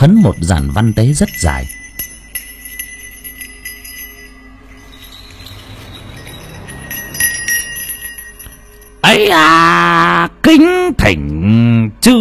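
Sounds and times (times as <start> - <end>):
speech: 0.0 - 1.8, 10.4 - 12.1
small handheld bell shaken gently during a ritual with burning incense: 0.0 - 9.2.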